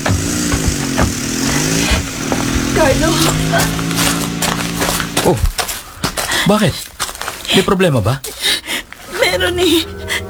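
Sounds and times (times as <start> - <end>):
motorized tricycle engine buzzing as it drives off: 0.0 - 5.6, 9.0 - 10.2
speech: 2.9 - 3.8, 5.2 - 5.5, 6.4 - 6.9, 7.5 - 8.5, 9.4 - 10.0.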